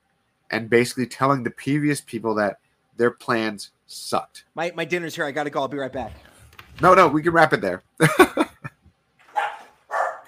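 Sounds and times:
speech: 0.5s - 8.4s
laughter: 8.0s - 8.8s
dog barking: 9.3s - 10.2s.

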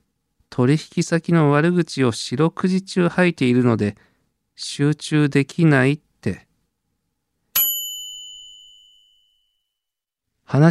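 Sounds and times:
speech: 0.6s - 6.5s, 10.5s - 10.6s
elevator arrival chime ding: 7.6s - 9.4s.

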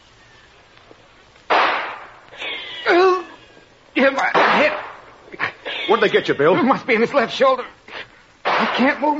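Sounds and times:
volley of rifle gunfire from guards on a beach: 1.5s - 2.2s, 8.4s - 9.0s
laughter: 2.3s - 3.5s, 4.6s - 7.4s
speech: 4.0s - 4.8s, 5.9s - 7.8s, 8.8s - 9.1s.

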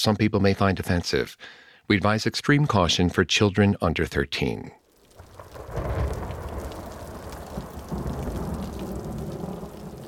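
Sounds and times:
speech: 0.0s - 4.8s
steady rain on a cold January night: 4.8s - 10.0s
low thunder rumbling: 5.0s - 10.0s.

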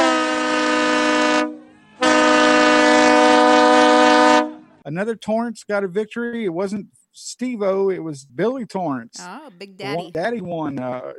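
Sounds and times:
loud train horn blasts: 0.0s - 4.8s
speech: 4.9s - 11.1s.

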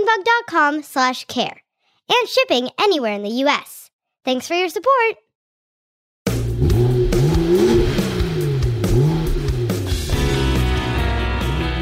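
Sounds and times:
speech: 0.1s - 5.2s
race car engine revving: 6.3s - 11.8s.

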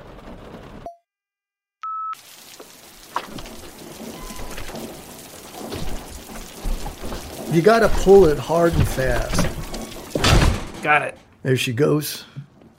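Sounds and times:
steady rain hissing and pattering: 0.0s - 0.8s, 2.2s - 11.2s
speech: 7.5s - 9.6s, 10.8s - 12.3s.

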